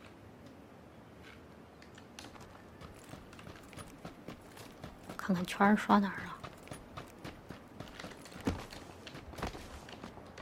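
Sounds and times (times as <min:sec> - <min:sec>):
faint footsteps: 0:02.2 - 0:10.4
speech: 0:05.3 - 0:06.3.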